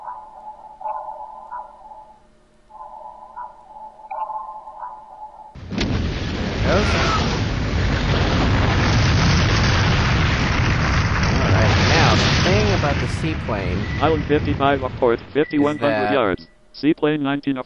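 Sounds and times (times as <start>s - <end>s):
faint tonal hum: 0.0s - 5.6s, 15.3s - 17.6s
underwater explosion off the port side of a ship in a naval video game: 5.6s - 15.3s
speech: 13.2s - 17.6s.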